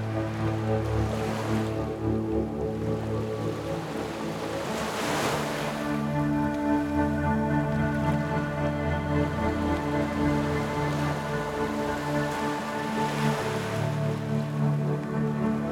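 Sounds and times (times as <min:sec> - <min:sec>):
gentle waves with light surf: 0:00.0 - 0:15.7
soft sustained music with long held low and mid tones: 0:00.0 - 0:15.7.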